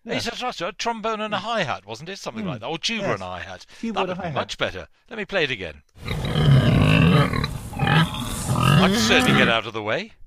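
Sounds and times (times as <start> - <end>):
speech: 0.0 - 8.1, 8.8 - 10.2
pigs grunting and snorting: 6.0 - 9.6.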